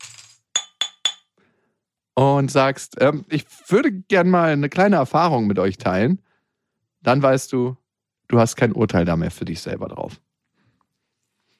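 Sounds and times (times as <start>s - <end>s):
tapping on a glass for a toast: 0.6s - 1.3s
speech: 2.2s - 6.3s, 7.0s - 10.2s.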